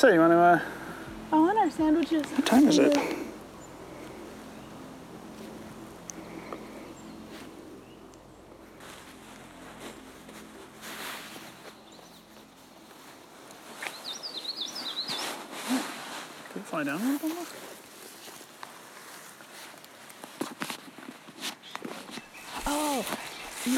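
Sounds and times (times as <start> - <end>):
speech: 0.0 - 3.2
indigo bunting singing: 0.0 - 15.8, 21.6 - 23.7
outdoor noise: 0.0 - 23.7
low rumble: 0.7 - 13.4.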